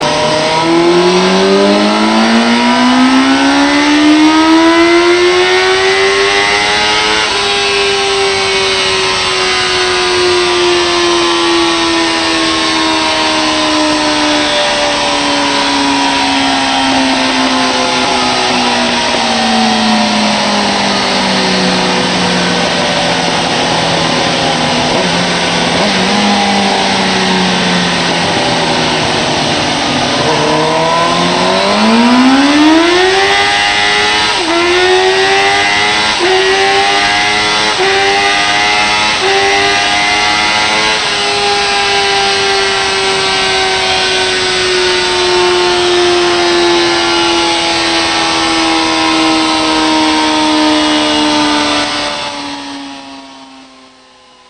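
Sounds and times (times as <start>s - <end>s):
1998 Suzuki GSXR750 motorcycle engine: 0.0s - 54.4s.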